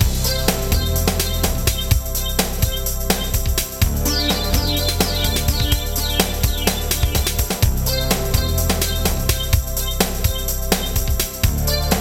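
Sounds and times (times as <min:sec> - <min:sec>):
jungle ambience: 0:00.1 - 0:11.9.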